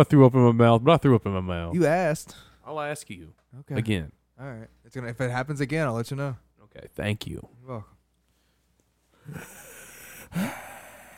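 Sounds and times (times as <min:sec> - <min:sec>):
speech: 0:00.0 - 0:07.9, 0:09.3 - 0:09.6, 0:10.3 - 0:10.7
heavy exaggerated breathing into microphone: 0:08.3 - 0:11.1.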